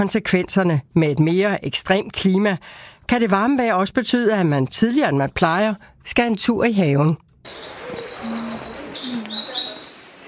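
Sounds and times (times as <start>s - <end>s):
speech: 0.0s - 8.7s
several birds chirping and trilling outdoors in spring: 7.5s - 10.2s
low cooing call: 7.8s - 9.8s.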